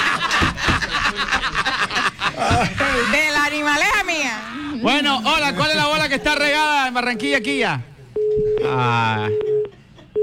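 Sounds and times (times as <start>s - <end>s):
laughter: 0.0s - 6.8s
speech: 2.6s - 9.6s
telephone busy tone after a dropped call: 8.2s - 10.2s.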